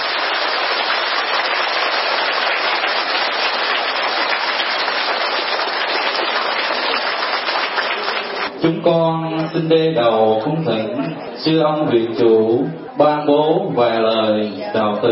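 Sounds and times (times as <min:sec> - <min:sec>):
large audience applauding a Buddhist monk lecturer: 0:00.0 - 0:08.5
speech: 0:08.6 - 0:15.1.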